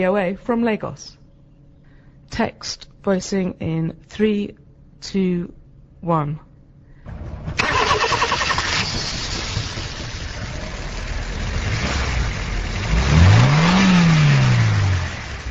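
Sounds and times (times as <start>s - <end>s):
speech: 0.0s - 1.2s, 2.3s - 6.5s
car engine starting, running and revving at an open-air garage in Lagos, Nigeria: 7.1s - 15.5s.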